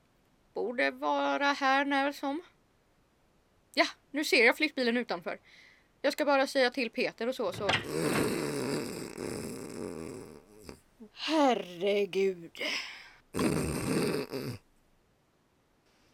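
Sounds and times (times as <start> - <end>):
speech: 0.8 - 2.6, 3.7 - 8.4, 11.2 - 14.6
loud rough rattling snoring: 7.6 - 10.8, 13.3 - 14.6.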